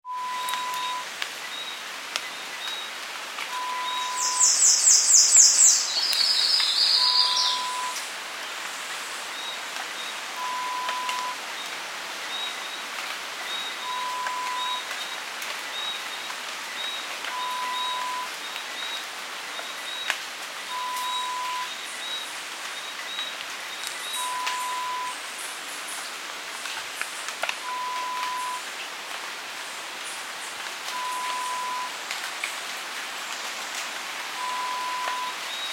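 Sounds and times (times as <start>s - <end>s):
rainforest ambience: 0.0s - 35.7s.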